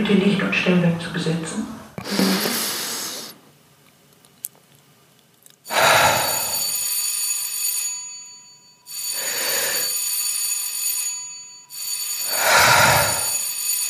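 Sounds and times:
speech: 0.0s - 2.2s
electric bell ringing the third bell signal before a stage performance: 5.7s - 13.8s.

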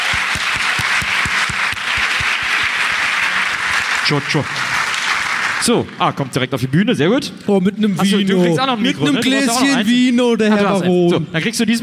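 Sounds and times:
audience applause: 0.0s - 6.0s
speech: 4.1s - 4.7s, 5.6s - 11.8s.

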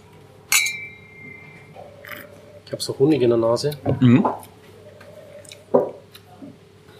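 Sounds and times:
glasses clinking: 0.5s - 2.3s
speech: 2.7s - 4.5s.

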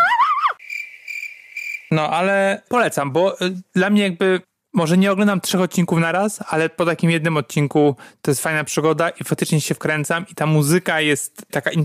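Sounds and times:
crickets chirping in a high-pitched trill: 0.6s - 1.9s
speech: 1.9s - 11.8s.

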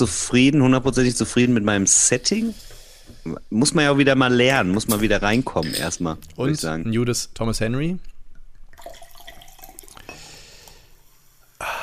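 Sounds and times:
speech: 0.0s - 8.1s
drink pouring into a glass without ice: 8.6s - 10.7s.

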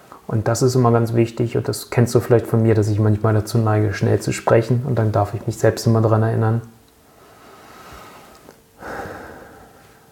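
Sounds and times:
speech: 0.3s - 6.8s
slow deep breath: 7.1s - 10.1s.

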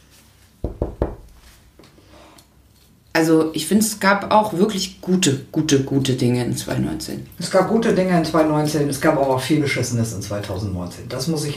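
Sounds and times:
quick knocks on wood: 0.6s - 1.4s
speech: 3.2s - 11.5s.

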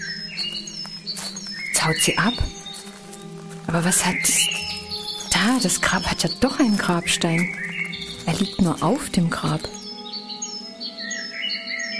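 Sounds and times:
crow calling at a grave: 0.0s - 11.9s
speech: 1.8s - 2.6s, 3.7s - 4.6s, 5.4s - 9.8s.

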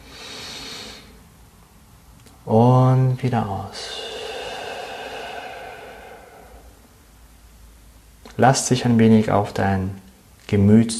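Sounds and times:
long deep airy inhale in a guided meditation: 0.0s - 1.2s, 3.7s - 7.2s
speech: 2.4s - 4.0s, 8.4s - 10.9s.

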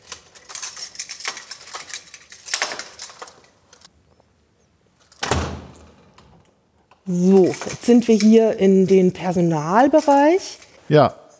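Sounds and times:
heavy door thudding shut: 5.2s - 5.9s
speech: 7.1s - 11.2s.

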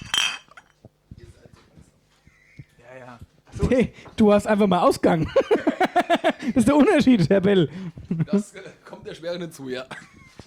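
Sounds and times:
beer glasses clinking in a toast: 0.0s - 0.7s
speech: 3.0s - 10.1s.

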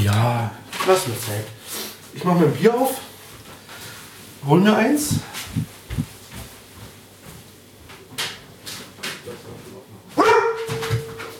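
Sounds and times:
speech: 0.1s - 3.1s, 4.4s - 6.1s
dog barking: 10.2s - 11.3s.

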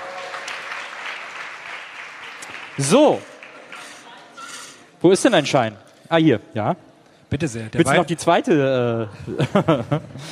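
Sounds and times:
audience applauding for bingo winners: 0.0s - 4.2s
speech: 2.8s - 3.3s, 5.0s - 10.2s
laughter: 9.0s - 10.2s.

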